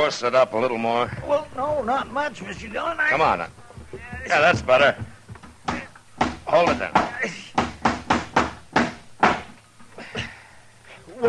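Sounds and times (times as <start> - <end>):
speech: 0.0 - 5.1, 6.5 - 7.4
hammer driving a nail into a rotten dry wooden door: 5.6 - 9.6.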